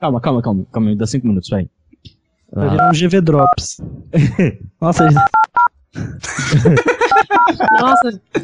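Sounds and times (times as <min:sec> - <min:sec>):
speech: 0:00.0 - 0:08.4
telephone keypad dialing tones: 0:02.8 - 0:03.6, 0:05.0 - 0:05.7
laughter: 0:04.2 - 0:05.3, 0:06.0 - 0:08.4.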